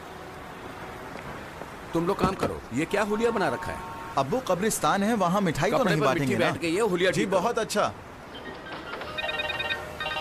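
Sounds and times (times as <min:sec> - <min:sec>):
speech: 0:01.9 - 0:08.0
telephone ringing with warbling electronic tone: 0:08.3 - 0:10.1.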